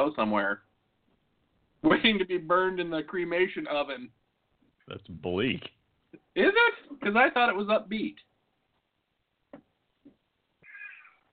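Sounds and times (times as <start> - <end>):
speech: 0.0 - 0.7, 1.8 - 4.2, 4.9 - 8.3
cat meowing: 10.6 - 11.2.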